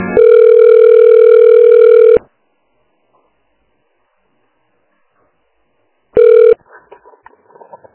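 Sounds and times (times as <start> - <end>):
phone line tone during call transfer: 0.2 - 2.2, 6.2 - 6.6
telephone keypad beeps: 0.2 - 2.2, 6.2 - 6.6.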